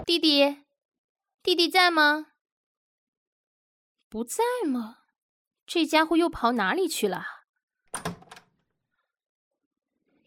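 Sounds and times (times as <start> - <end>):
speech: 0.0 - 0.6, 1.4 - 2.3, 4.1 - 5.0, 5.7 - 8.1
door being opened: 7.9 - 8.5.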